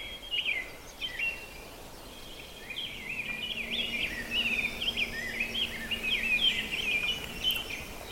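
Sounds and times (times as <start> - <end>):
American robin singing on a bog: 0.0 - 8.1.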